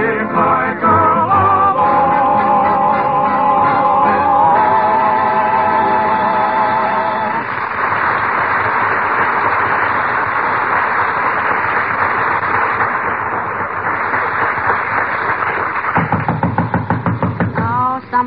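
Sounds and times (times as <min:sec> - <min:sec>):
dense crackly noise on an old-sounding recording: 0:00.0 - 0:18.2
knocking on a door: 0:16.0 - 0:17.8.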